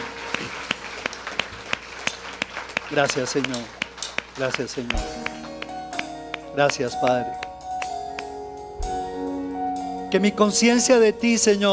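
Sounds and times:
congregation clapping in a steady rhythm: 0.0 - 8.3
speech: 2.9 - 3.8, 4.4 - 5.3, 6.6 - 7.4, 10.1 - 11.7.

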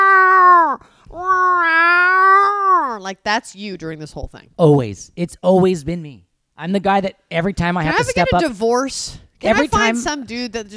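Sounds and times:
person imitating distressed cat yowls: 0.0 - 3.0
speech: 3.1 - 10.7.

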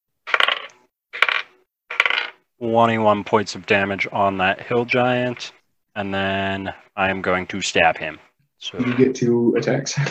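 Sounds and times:
dice rattling across a hard tabletop during a tabletop role-playing game: 0.3 - 2.4
speech: 2.6 - 10.0.

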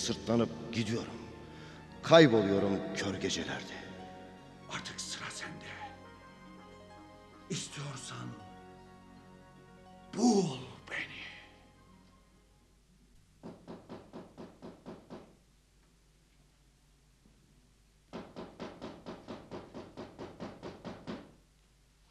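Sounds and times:
speech: 0.0 - 1.2, 2.0 - 3.8, 10.2 - 10.7
rapid knocking on a door: 13.4 - 15.4, 18.1 - 21.4.

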